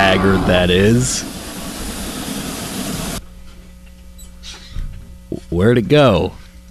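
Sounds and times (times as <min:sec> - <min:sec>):
loud steady burst of hissing steam from a train in the station: 0:00.0 - 0:03.2
low droning hum of an idling train engine in the station: 0:00.0 - 0:03.2
speech: 0:00.2 - 0:01.4, 0:05.5 - 0:06.4.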